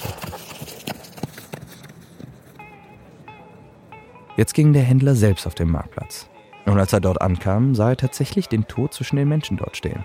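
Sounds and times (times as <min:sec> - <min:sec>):
horse galloping hoofbeats: 0:00.0 - 0:02.7
speech: 0:04.4 - 0:10.0.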